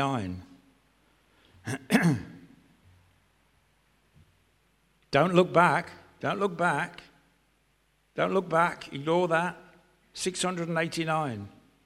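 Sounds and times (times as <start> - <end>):
speech: 0.0 - 0.5, 1.6 - 2.3, 5.1 - 7.1, 8.2 - 9.6, 10.2 - 11.6
loud rough throat clearing: 1.6 - 2.4
person coughing sharply: 1.6 - 2.4.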